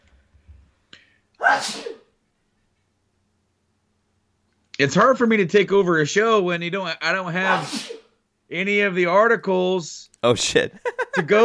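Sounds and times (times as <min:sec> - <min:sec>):
sneeze: 0:01.4 - 0:02.1, 0:07.5 - 0:08.2
speech: 0:01.5 - 0:02.0, 0:04.8 - 0:11.4
laughter: 0:10.4 - 0:11.4.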